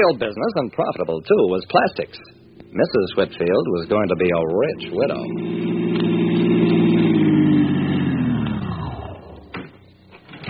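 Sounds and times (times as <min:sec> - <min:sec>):
speech: 0:00.0 - 0:05.8
car engine humming: 0:00.0 - 0:10.4.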